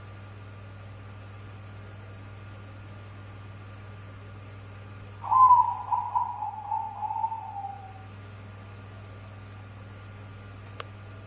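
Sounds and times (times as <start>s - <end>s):
constant low hum: 0.0s - 11.2s
dove cooing: 5.2s - 8.1s.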